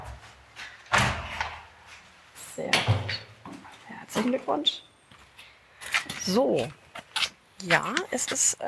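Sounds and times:
door slamming shut: 0.9s - 1.5s
speech: 4.2s - 4.9s, 6.3s - 6.8s, 7.6s - 8.6s.

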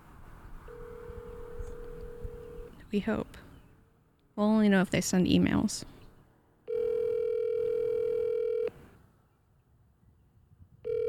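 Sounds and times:
low rumbling outdoor background: 0.0s - 11.0s
steady unbroken telephone tone: 0.7s - 2.7s, 6.7s - 8.7s, 10.8s - 11.0s
speech: 2.9s - 3.4s, 4.4s - 6.0s.

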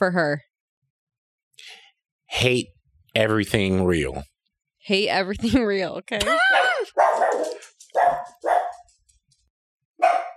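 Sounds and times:
speech: 0.0s - 0.5s, 1.6s - 7.1s
male dog barking: 6.5s - 8.9s, 10.0s - 10.3s.

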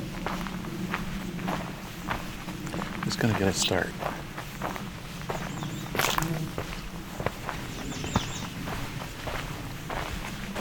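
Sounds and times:
footsteps on a nature trail in a pine tree nature preserve: 0.0s - 10.5s
speech: 3.1s - 4.2s.

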